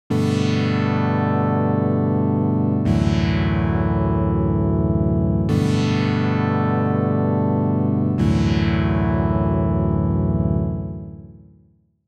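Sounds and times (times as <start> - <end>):
analog-style synthesizer: 0.1 - 11.4.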